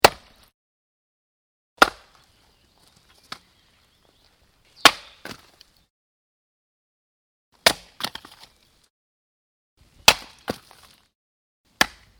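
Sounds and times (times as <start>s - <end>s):
axe: 0.0s - 0.4s, 4.8s - 5.5s, 7.6s - 8.5s, 10.0s - 11.0s, 11.8s - 12.0s.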